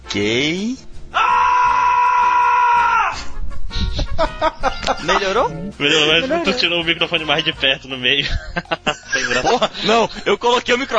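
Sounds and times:
speech: 0:00.1 - 0:00.9, 0:04.2 - 0:10.9
man screaming loudly from the stomach: 0:01.1 - 0:03.4
laughter: 0:03.9 - 0:06.6, 0:07.4 - 0:10.4.

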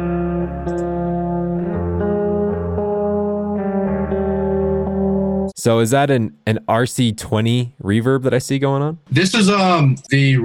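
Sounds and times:
distorted guitars recorded for a music production session: 0:00.0 - 0:05.6
speech: 0:05.6 - 0:10.4.

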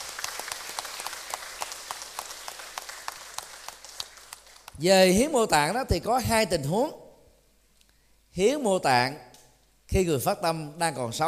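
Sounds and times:
audience clapping at an organ and tissue donation event at Giác Ngộ Pagoda in Vietnam: 0:00.0 - 0:04.8
speech: 0:04.8 - 0:07.0, 0:08.4 - 0:09.3, 0:09.9 - 0:11.2.

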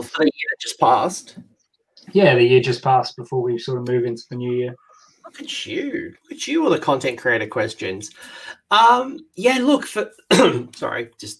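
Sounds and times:
speech: 0:00.2 - 0:01.4, 0:02.1 - 0:11.3
person clearing throat: 0:10.3 - 0:10.8
person coughing in short loud voiced bursts: 0:10.3 - 0:10.8.

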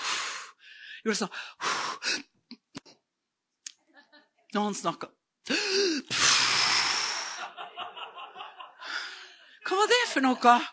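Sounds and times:
person imitating hyperventilating breathing: 0:00.0 - 0:02.4, 0:05.5 - 0:07.4
speech: 0:01.0 - 0:02.3, 0:04.5 - 0:05.6, 0:09.7 - 0:10.7
laughter: 0:03.8 - 0:04.4, 0:07.2 - 0:10.7.

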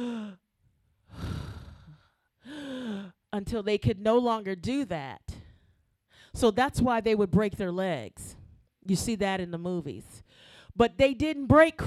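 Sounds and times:
voice imitating the strained gasping breath of someone pushing up to breathe: 0:00.0 - 0:00.4, 0:01.1 - 0:03.2
speech: 0:03.3 - 0:05.2, 0:06.3 - 0:11.8.

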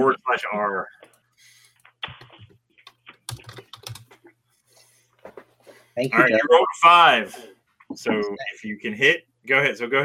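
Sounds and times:
speech: 0:00.0 - 0:01.6, 0:06.0 - 0:10.0
typing on a computer keyboard: 0:02.0 - 0:04.2.

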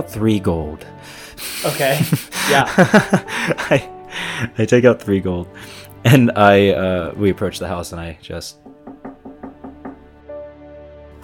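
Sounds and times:
speech: 0:00.0 - 0:08.7
laughter: 0:01.4 - 0:04.5
sharp knocks on a door: 0:08.6 - 0:10.1.

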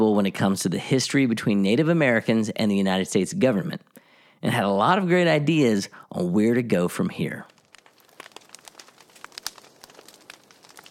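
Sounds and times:
speech: 0:00.2 - 0:07.5
wood fire crackling: 0:05.8 - 0:10.9
wood fire pops and snaps: 0:07.0 - 0:10.9.

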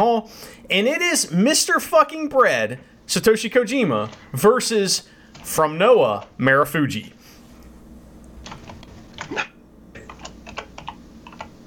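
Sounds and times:
speech: 0:00.0 - 0:07.2
typing on a computer keyboard: 0:10.0 - 0:11.5.

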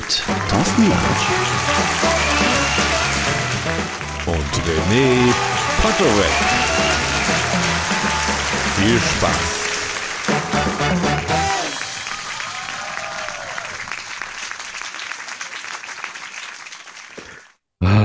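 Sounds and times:
crowd noise: 0:00.0 - 0:15.8
applause: 0:00.0 - 0:17.6
speech: 0:00.1 - 0:02.1, 0:04.7 - 0:06.6, 0:08.8 - 0:09.6
burst of jingle music: 0:00.2 - 0:13.9.

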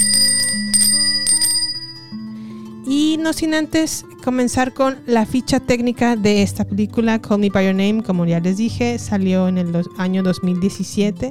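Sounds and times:
small bell ringing: 0:00.0 - 0:02.4
speech: 0:03.2 - 0:11.2.

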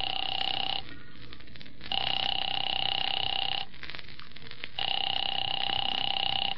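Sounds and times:
telephone ringback tone through a handset: 0:00.0 - 0:01.0, 0:01.9 - 0:03.7, 0:04.8 - 0:06.5.

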